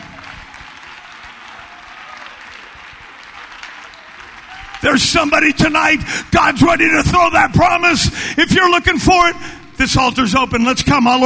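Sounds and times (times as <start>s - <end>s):
audience clapping at a worship service: 0.0s - 6.2s
speech: 4.8s - 11.2s.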